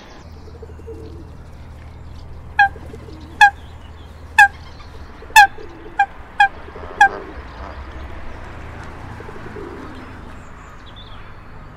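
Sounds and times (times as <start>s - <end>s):
coot giving loud clipped nasal notes: 0.5s - 1.4s, 2.5s - 8.0s.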